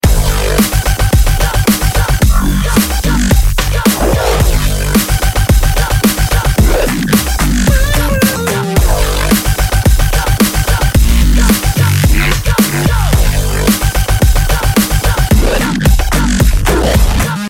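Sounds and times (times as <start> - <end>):
dubstep ringtone: 0.0 - 17.3.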